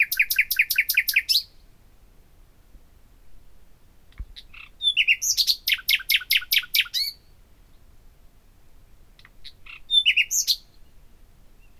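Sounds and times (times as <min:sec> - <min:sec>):
common nightingale Luscinia megarhynchos singing: 0:00.0 - 0:01.6, 0:04.4 - 0:07.3, 0:09.2 - 0:11.0.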